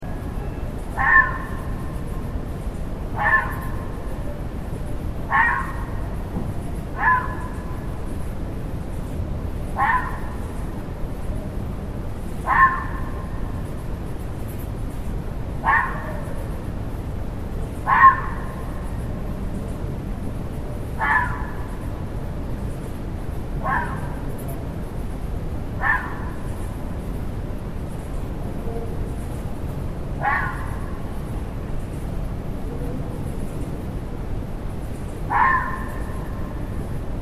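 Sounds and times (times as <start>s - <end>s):
vixen in woodland at night: 0.0s - 37.2s.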